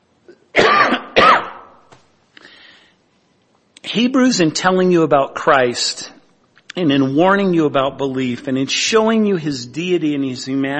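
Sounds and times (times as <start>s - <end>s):
harsh coughs: 0.3s - 1.8s
speech: 4.0s - 6.2s, 6.8s - 10.7s.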